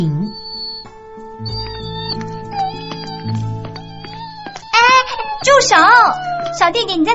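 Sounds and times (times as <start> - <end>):
speech: 0.0 - 0.2, 5.4 - 7.1
steady sustained tonal background: 0.0 - 7.1
kitten meowing in plaintive drawn-out cries: 1.5 - 7.1.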